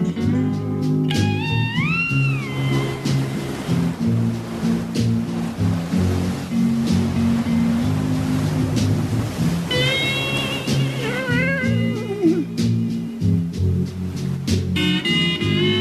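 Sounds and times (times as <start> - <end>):
smooth ocean waves washing onto a shore: 0.0 - 15.7
high thin cries: 10.9 - 12.6.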